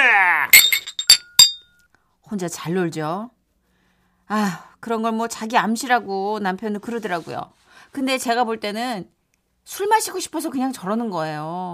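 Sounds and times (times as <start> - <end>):
glasses clinking in a toast: 0.5 - 1.7
speech: 2.3 - 3.4, 4.3 - 11.7.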